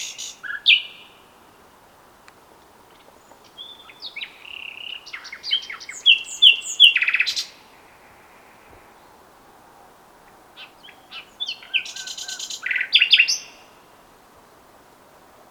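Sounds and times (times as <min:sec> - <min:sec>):
Common nightingale song: 0:00.0 - 0:01.7, 0:02.8 - 0:09.3, 0:10.2 - 0:14.7
Common nightingale chirps: 0:03.0 - 0:07.5, 0:10.3 - 0:13.6.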